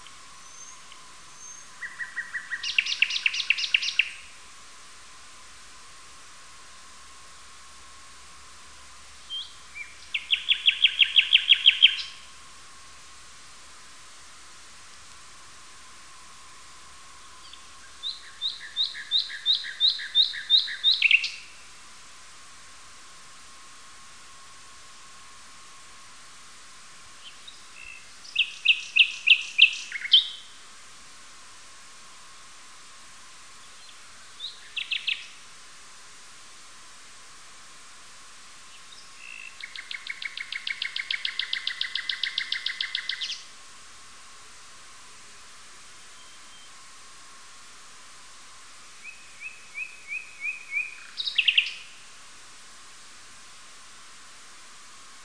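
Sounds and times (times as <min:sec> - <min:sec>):
common nightingale Luscinia megarhynchos: 0:00.0 - 0:04.4, 0:09.2 - 0:12.5, 0:15.7 - 0:21.8, 0:27.1 - 0:30.6, 0:33.5 - 0:35.5, 0:38.6 - 0:43.6, 0:45.8 - 0:46.8, 0:48.9 - 0:52.2.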